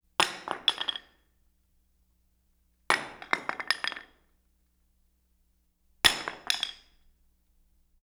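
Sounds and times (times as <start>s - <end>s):
solid metal sledgehammer dropping on concrete: 0.2s - 1.2s, 2.9s - 4.2s, 6.1s - 7.1s.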